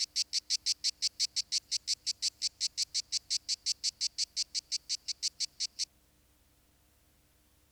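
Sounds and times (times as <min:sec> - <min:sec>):
Lyristes plebejus cicada rasping high pulsed buzz: 0:00.0 - 0:05.8.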